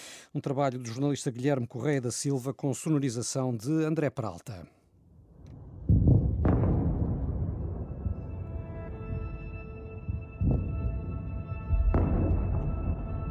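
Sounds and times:
speech: 0.3 - 4.8
explosions booming: 5.5 - 9.3, 10.1 - 13.2.

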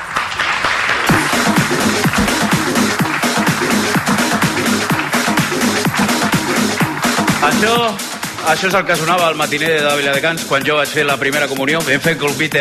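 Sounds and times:
crowd applauding in Viladecans: 0.0 - 9.1
speech: 7.5 - 12.5.

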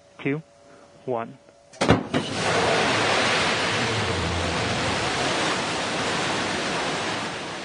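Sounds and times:
speech: 0.2 - 2.6
New Shepard rocket liftoff roar: 2.1 - 7.6
sharp crackling bursts of rocket liftoff: 2.1 - 7.6.

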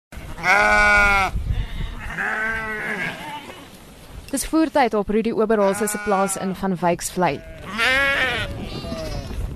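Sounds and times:
hungry sheep bleating at feed troughs on a farm in Van Wyksvlei: 0.2 - 3.7, 5.6 - 6.6, 7.3 - 9.4
speech: 0.4 - 1.4, 4.3 - 7.8.

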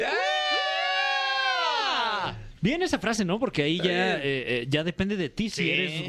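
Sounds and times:
crowd of women screaming in excitement: 0.0 - 2.4
speech: 2.6 - 6.0.

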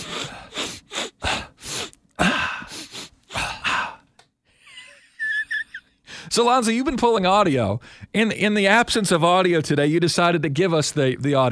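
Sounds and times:
loud wet nasal sniffles: 0.0 - 2.0, 2.6 - 3.6
speech: 6.4 - 11.4.

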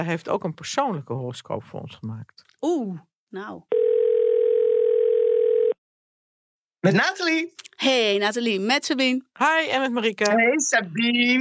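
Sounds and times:
speech: 0.0 - 3.8, 6.8 - 11.3
low buzzing telephone ringing tone while placing a call: 3.7 - 5.8.

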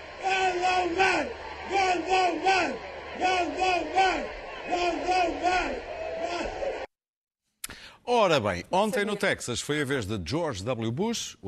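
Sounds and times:
rally crowd chanting a slogan: 0.0 - 6.9
speech: 0.8 - 6.7, 8.0 - 11.4.

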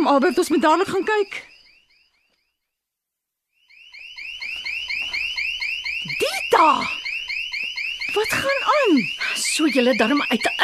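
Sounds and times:
speech: 0.0 - 1.5, 6.2 - 7.0, 8.1 - 10.6
house alarm sounding in rapid electronic chirps: 0.0 - 2.9, 3.5 - 10.6.

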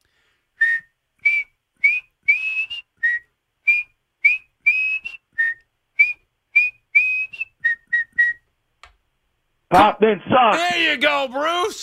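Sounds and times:
person whistling loudly in short piercing bursts like hockey arena fans: 0.6 - 8.4
speech: 9.7 - 11.8.

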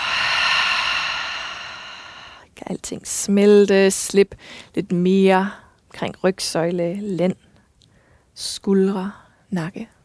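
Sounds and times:
deep breath exhaled through the mouth during a guided relaxation exercise: 0.0 - 2.5
speech: 2.8 - 7.5, 8.4 - 10.0.

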